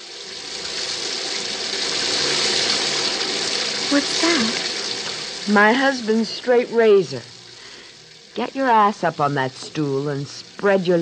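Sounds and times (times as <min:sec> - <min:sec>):
shower water running: 0:00.0 - 0:11.0
speech: 0:03.9 - 0:04.7, 0:05.5 - 0:07.3, 0:08.4 - 0:11.0.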